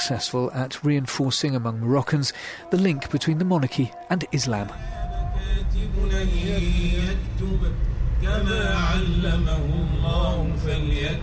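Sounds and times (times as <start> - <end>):
Quranic recitation playing on the car radio: 0.0 - 11.2
man chanting Quranic verses at the wheel of his car: 0.0 - 11.2
speech: 0.1 - 11.2
low rumble of the moving car: 4.7 - 11.2.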